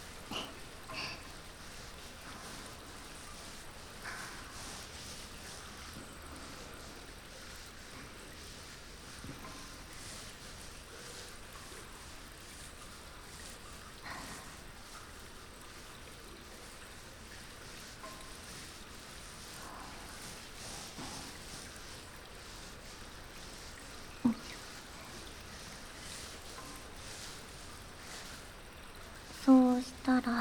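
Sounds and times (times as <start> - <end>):
shampoo being lathered into a thick fluffy foam: 0.0 - 30.3.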